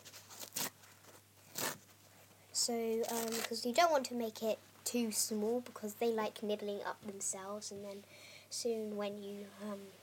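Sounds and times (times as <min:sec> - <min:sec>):
kitchen paper towel being torn into strips by hand: 0:00.0 - 0:02.0, 0:03.0 - 0:03.6
speech: 0:02.6 - 0:10.0.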